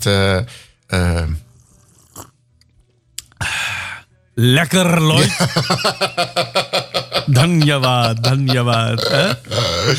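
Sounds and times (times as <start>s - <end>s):
speech: 0.0s - 1.4s, 4.4s - 9.9s
person sipping coffee: 1.5s - 2.4s
person slurping hot coffee: 1.5s - 2.4s
laughter: 5.2s - 9.9s.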